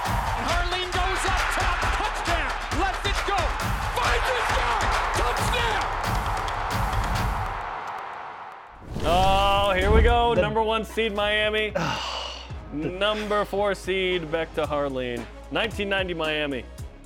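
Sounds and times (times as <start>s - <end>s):
large stadium crowd cheering: 0.0s - 9.9s
speech: 10.5s - 12.1s, 12.7s - 17.0s.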